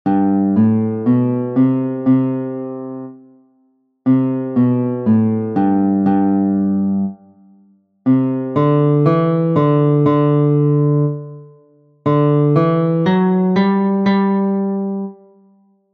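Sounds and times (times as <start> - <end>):
guitar playing walk-up and walk-down scales: 0.1 - 3.4, 4.1 - 7.5, 8.1 - 15.5.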